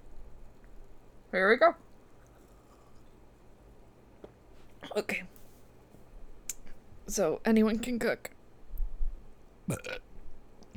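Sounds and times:
speech: 1.3 - 1.9, 5.0 - 5.3, 7.1 - 8.4, 9.7 - 10.0
short croaky burp: 9.7 - 10.1.

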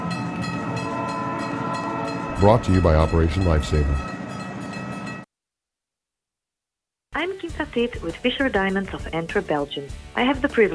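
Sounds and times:
train wheels rumbling on rails: 0.0 - 5.2
speech: 2.4 - 4.1, 7.7 - 10.7.

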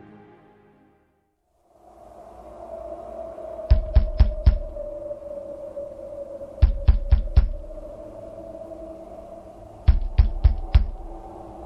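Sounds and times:
heavy knocking on a door: 3.7 - 4.6, 9.9 - 11.0.

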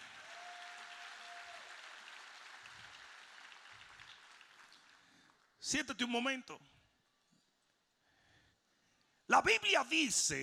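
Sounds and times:
large crowd applauding: 0.0 - 5.5
speech: 5.6 - 6.8, 9.4 - 10.4.

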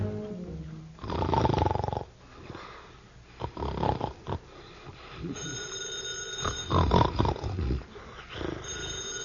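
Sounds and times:
loud rasping snore-like rumble: 1.0 - 2.1, 3.4 - 4.5, 6.5 - 8.7
telephone bell ringing in short bursts: 5.4 - 6.8, 8.6 - 9.2.

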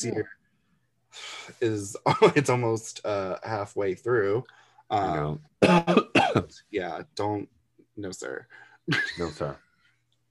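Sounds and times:
speech: 0.0 - 0.4, 1.1 - 9.6
coughing and throat clearing: 2.0 - 2.5, 5.6 - 6.6.

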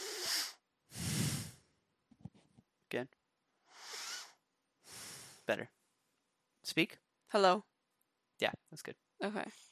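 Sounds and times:
breathing through the nose into a microphone: 0.0 - 1.7, 3.7 - 5.5
speech: 2.9 - 3.2, 5.5 - 5.8, 6.7 - 7.7, 8.4 - 9.7.

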